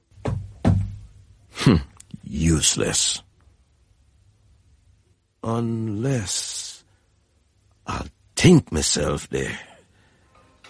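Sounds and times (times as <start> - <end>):
shoes banged together: 0.1 - 1.1
speech: 1.7 - 3.3, 5.5 - 6.6, 8.4 - 9.7.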